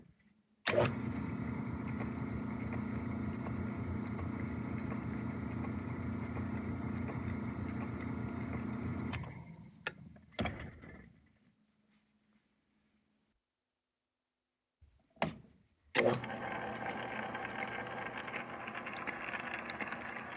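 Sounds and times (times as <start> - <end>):
lathe: 0.7 - 9.7, 16.0 - 20.3.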